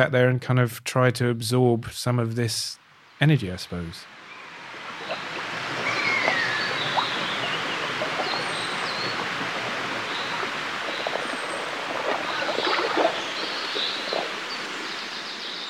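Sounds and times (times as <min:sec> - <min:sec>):
speech: 0:00.0 - 0:04.2
scattered bird calls: 0:03.7 - 0:15.6
common buzzard calling: 0:04.1 - 0:14.4
steady rushing like water or wind: 0:05.0 - 0:15.1.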